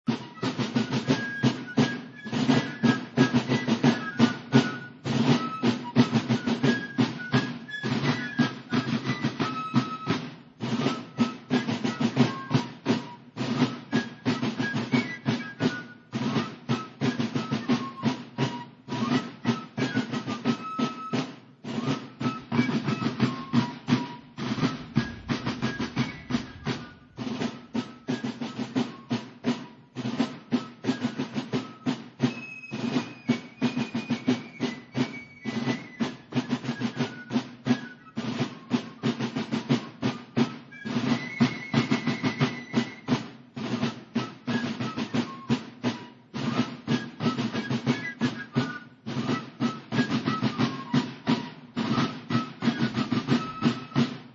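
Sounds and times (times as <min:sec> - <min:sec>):
fifes playing a march: 0:00.0 - 0:54.3.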